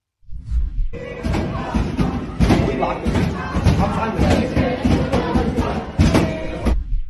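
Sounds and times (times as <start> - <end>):
dense noisy crowd of protesters shouting and chanting: 1.0 - 6.8
protesters pounding on a library door: 1.2 - 6.7.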